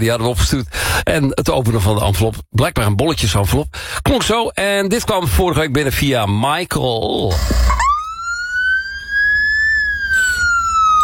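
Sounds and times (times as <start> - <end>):
speech: 0.0 - 7.8
Norwegian ambulance siren wailing: 7.3 - 11.0.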